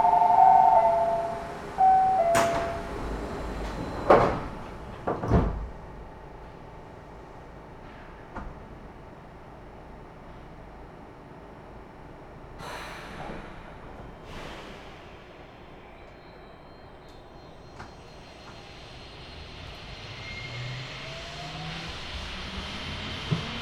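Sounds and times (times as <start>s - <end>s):
short tonal chime: 0.0s - 3.1s
train doors sliding shut with mechanical thuds and clunks: 0.0s - 5.9s, 12.6s - 19.9s.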